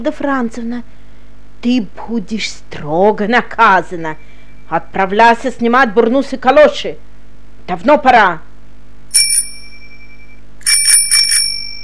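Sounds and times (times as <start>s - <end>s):
speech: 0.0s - 1.0s, 1.6s - 7.0s, 7.7s - 8.5s
low steady hum: 0.0s - 11.8s
school bell ringing at a girls' gymnasium: 9.1s - 11.8s.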